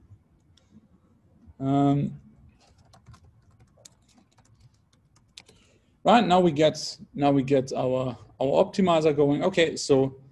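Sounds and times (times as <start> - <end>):
speech: 1.6 - 2.2, 6.0 - 10.2
computer keyboard typing: 2.6 - 5.6.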